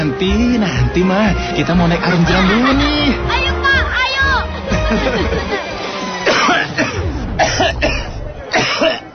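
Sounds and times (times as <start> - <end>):
speech: 0.1 - 3.5, 4.9 - 5.5
laughter: 1.5 - 9.1
man coughing: 6.2 - 9.1.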